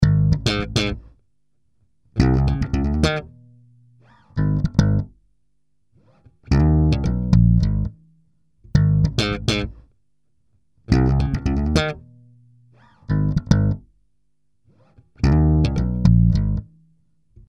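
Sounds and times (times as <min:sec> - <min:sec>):
electric bass slap: 0:00.0 - 0:01.1, 0:02.2 - 0:05.2, 0:06.5 - 0:08.0, 0:08.7 - 0:09.9, 0:10.9 - 0:12.2, 0:12.8 - 0:13.9, 0:15.2 - 0:16.8.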